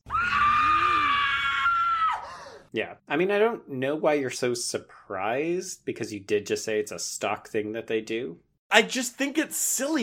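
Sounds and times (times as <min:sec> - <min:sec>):
actress screaming in a film: 0:00.0 - 0:02.6
speech: 0:02.8 - 0:10.0.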